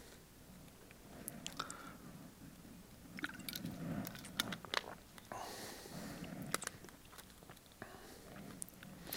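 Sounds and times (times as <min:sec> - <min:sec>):
person sipping and swallowing water: 0:01.2 - 0:01.9, 0:03.2 - 0:05.4, 0:06.0 - 0:09.0.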